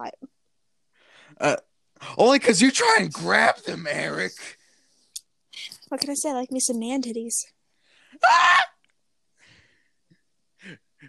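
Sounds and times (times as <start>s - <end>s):
speech: 1.3s - 4.6s, 5.9s - 7.6s, 8.2s - 8.5s
person mock screaming in agony: 8.2s - 8.8s.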